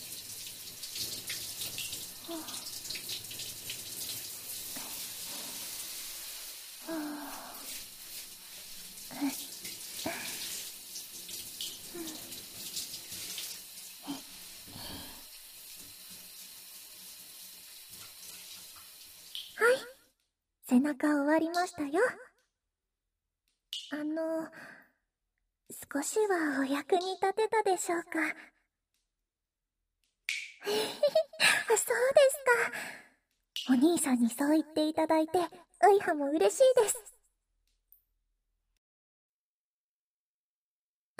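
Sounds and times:
water from a tap or shower splashing over skin rinsing soap suds: 0.0s - 19.6s
speech: 2.3s - 2.6s, 20.8s - 22.3s, 25.9s - 28.5s, 30.6s - 33.0s, 33.6s - 37.1s.

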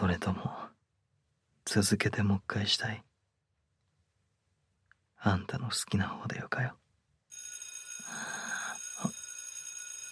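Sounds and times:
speech: 0.1s - 0.6s, 1.7s - 3.1s, 5.2s - 6.8s
fire alarm bell ringing: 7.3s - 10.1s.

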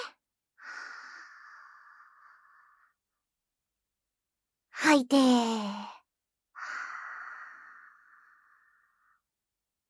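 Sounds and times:
deep breath in during a guided breathing exercise: 0.6s - 3.0s, 6.6s - 9.2s
speech: 4.9s - 5.9s.

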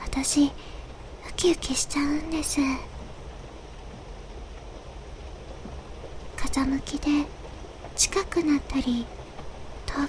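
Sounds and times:
rain pattering on forest foliage: 0.0s - 10.0s
soft low rumble: 0.0s - 10.0s
speech: 0.2s - 2.9s, 6.6s - 7.4s, 8.0s - 9.2s.

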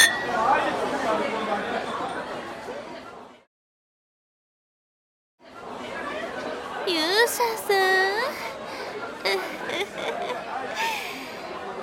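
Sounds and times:
glasses clinking in a toast: 0.0s - 0.8s
lively crowd chatter: 0.0s - 3.5s, 5.4s - 11.8s
people laughing: 8.3s - 11.8s.

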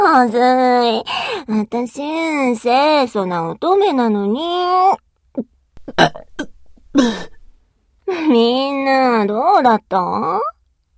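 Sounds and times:
speech: 0.2s - 7.4s, 8.1s - 10.6s
short throat sounds: 5.4s - 7.6s
loud rough throaty burp: 5.8s - 6.6s.

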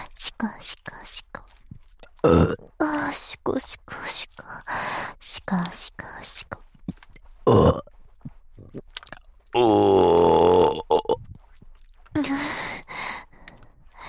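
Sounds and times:
speech: 0.4s - 1.2s, 2.2s - 2.6s, 3.5s - 4.1s
loud burping: 2.2s - 2.7s, 7.5s - 7.9s, 9.0s - 11.2s.

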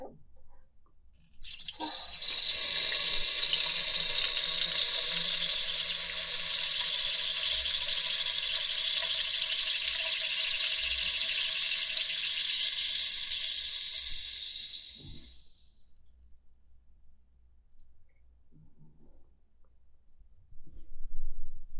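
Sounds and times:
person urinating: 1.4s - 15.7s.

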